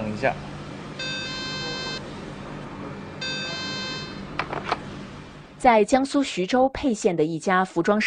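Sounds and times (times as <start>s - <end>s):
steady room noise: 0.0s - 8.0s
speech: 0.2s - 1.1s, 5.6s - 8.0s
fire telephone in a garment factory workshop ringing unanswered: 1.0s - 2.0s, 3.2s - 4.2s.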